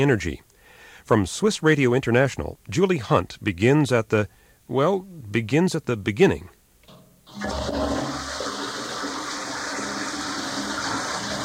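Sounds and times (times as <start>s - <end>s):
speech: 0.0s - 6.6s
toilet flushing: 7.3s - 11.4s.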